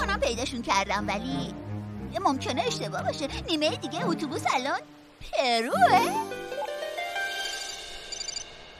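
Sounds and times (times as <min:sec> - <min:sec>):
speech: 0:00.1 - 0:06.4
phone ringing with a soft electronic ringtone: 0:07.3 - 0:08.6.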